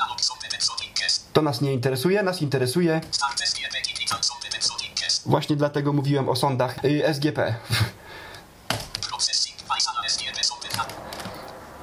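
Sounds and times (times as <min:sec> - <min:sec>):
speech: 0:01.4 - 0:03.7, 0:05.2 - 0:07.9
computer keyboard clicks: 0:10.2 - 0:11.6.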